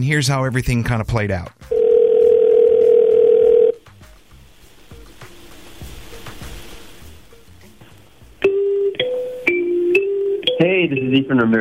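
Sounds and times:
speech: 0.0s - 1.7s, 10.9s - 11.5s
electronic ring tone from an outgoing phone call: 1.7s - 3.8s, 8.4s - 11.1s.

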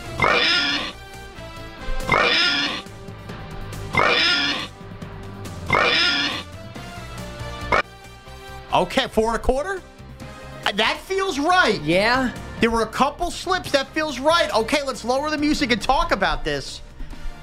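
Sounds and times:
person imitating pig oinks: 0.2s - 1.0s, 2.1s - 2.9s, 4.0s - 4.7s, 5.7s - 6.4s
speech: 8.8s - 10.0s, 10.7s - 16.8s.

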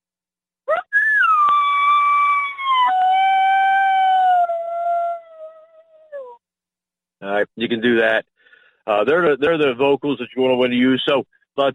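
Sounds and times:
coyote howl made on a predator call: 0.7s - 6.4s
speech: 7.6s - 11.7s.

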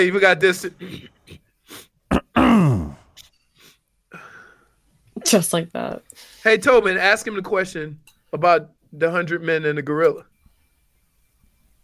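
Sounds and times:
speech: 0.0s - 1.1s, 5.3s - 10.3s
man at a podium clearing his throat: 0.8s - 1.4s, 2.1s - 3.1s.

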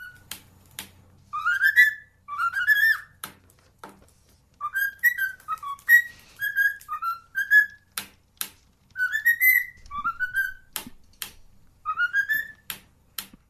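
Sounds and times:
parrot whistling a 1960s television theme tune: 0.0s - 0.3s, 1.3s - 3.2s, 4.6s - 7.9s, 8.9s - 10.8s, 11.8s - 12.7s.

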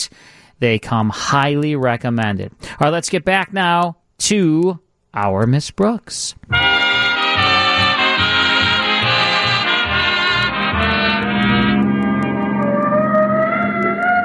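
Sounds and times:
speech: 0.6s - 6.7s
vehicle siren wailing: 6.6s - 14.2s.

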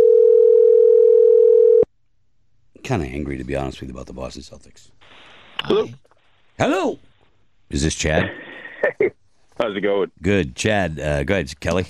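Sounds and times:
telephone dial tone while dialing a call: 0.0s - 1.9s
speech: 2.9s - 7.1s, 7.7s - 11.8s.

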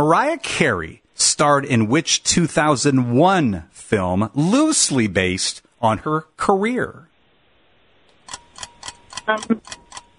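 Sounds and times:
speech: 0.0s - 7.1s, 9.3s - 9.8s
quiz timer ticking: 8.1s - 10.1s.

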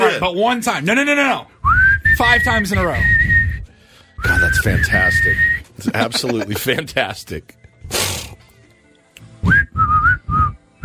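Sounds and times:
speech: 0.2s - 1.5s, 2.1s - 3.4s, 4.2s - 8.2s
person whistling short clear notes: 1.6s - 5.8s, 9.4s - 10.8s
laughter: 5.8s - 7.2s.

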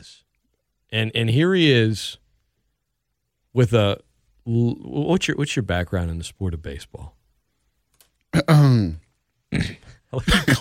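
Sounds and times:
speech: 0.9s - 2.2s, 3.6s - 7.2s, 8.3s - 10.6s
loud throat clearing with rumbling rasp and gruff hacks: 8.3s - 10.6s.

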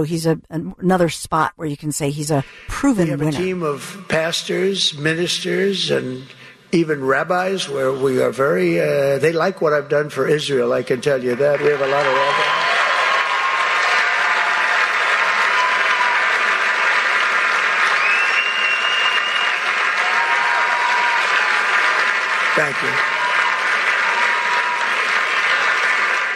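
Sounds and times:
speech: 0.0s - 12.8s
large crowd applauding: 11.0s - 26.3s.

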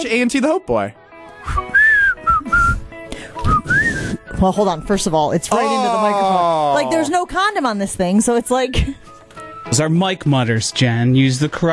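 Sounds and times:
speech: 0.0s - 1.6s, 4.4s - 9.0s, 9.7s - 11.7s
person whistling a tune: 1.4s - 4.3s.

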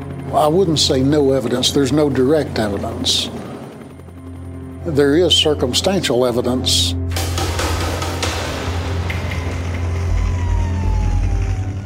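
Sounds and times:
fire engine engine drone: 0.0s - 5.8s, 6.8s - 11.8s
speech: 0.3s - 3.4s, 4.8s - 7.0s
faint fire engine siren: 8.8s - 11.8s.

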